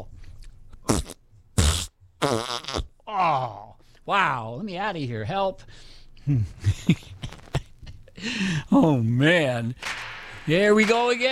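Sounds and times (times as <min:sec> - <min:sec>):
loud buzzy fart noises: 0:00.8 - 0:03.0
speech: 0:04.1 - 0:07.4, 0:08.2 - 0:11.3.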